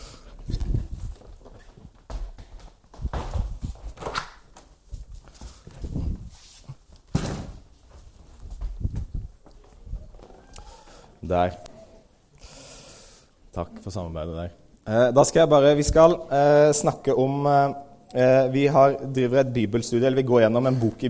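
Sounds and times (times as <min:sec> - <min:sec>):
heavy footsteps: 0:00.3 - 0:10.3
speech: 0:11.3 - 0:11.7, 0:13.6 - 0:21.0.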